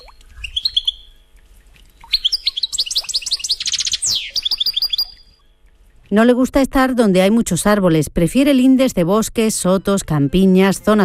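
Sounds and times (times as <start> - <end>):
European goldfinch trilling song: 0.0 - 1.3, 1.9 - 5.4
speech: 6.1 - 11.0.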